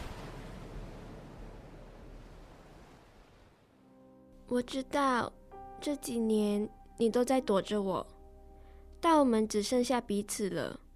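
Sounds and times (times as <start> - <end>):
stormy sea waves: 0.0 - 3.8
speech: 4.5 - 8.2, 9.0 - 10.8.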